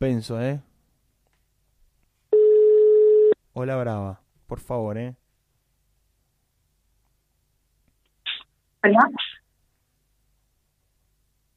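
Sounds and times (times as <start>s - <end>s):
speech: 0.0s - 0.7s, 3.6s - 5.2s, 8.8s - 9.2s
telephone dialing tone: 2.4s - 3.4s.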